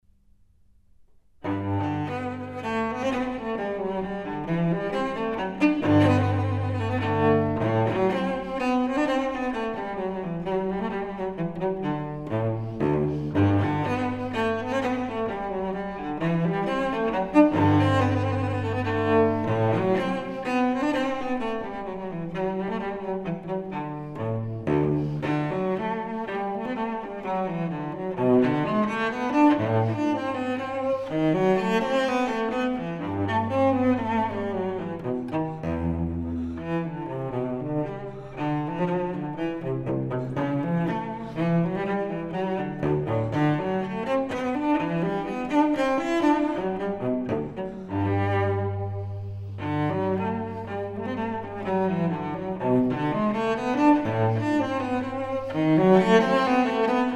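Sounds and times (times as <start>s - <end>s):
solo cello piece in G: 1.0s - 57.1s.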